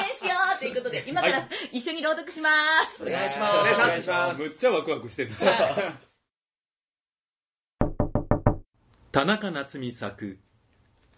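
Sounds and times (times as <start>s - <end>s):
speech: 0.9s - 6.1s, 9.2s - 10.5s
heavy knocking on a door: 7.8s - 8.7s.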